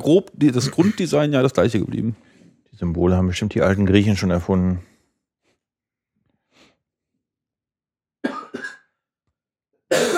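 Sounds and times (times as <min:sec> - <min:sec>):
speech: 0:00.0 - 0:04.9
person coughing harshly: 0:08.2 - 0:09.0, 0:09.9 - 0:10.1.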